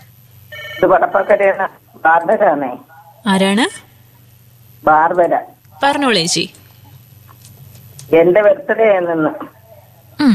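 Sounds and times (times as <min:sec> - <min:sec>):
telephone ringing on an incoming radio call-in line: 0:00.5 - 0:01.3
speech: 0:00.8 - 0:03.8, 0:04.8 - 0:06.6, 0:08.1 - 0:09.6, 0:10.2 - 0:10.3.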